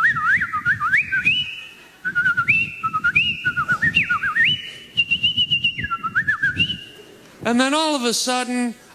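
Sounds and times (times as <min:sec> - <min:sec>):
person whistling imitation of garden birdsong: 0:00.0 - 0:07.0
speech: 0:07.5 - 0:08.8.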